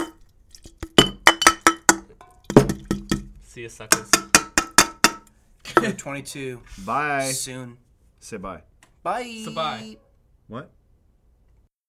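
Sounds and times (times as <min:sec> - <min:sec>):
empty cans clinking together in a toast: 0:00.0 - 0:06.0
speech: 0:03.6 - 0:04.5, 0:05.8 - 0:10.8.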